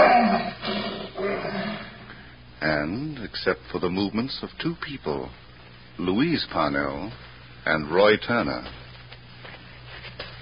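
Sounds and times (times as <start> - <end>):
lion roaring: 0.0 - 2.0
speech: 2.8 - 5.4, 6.0 - 8.8.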